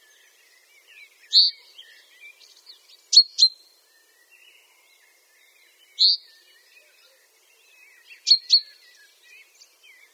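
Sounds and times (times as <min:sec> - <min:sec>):
chaffinch Fringilla coelebs calls with slurred note and double chink: 0:01.3 - 0:01.6, 0:08.2 - 0:08.6.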